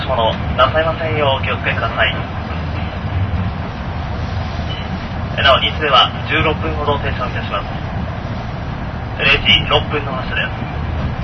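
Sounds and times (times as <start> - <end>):
train pulling into a station platform with wheels and carriage noise: 0.0 - 11.2
speech: 0.2 - 2.4, 5.4 - 7.8, 9.2 - 10.8.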